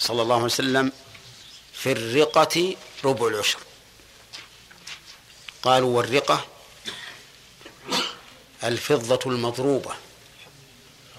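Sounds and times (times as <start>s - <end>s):
speech: 0.0s - 1.1s, 1.8s - 3.7s, 5.6s - 6.5s, 8.6s - 10.1s
person sneezing: 6.8s - 8.4s.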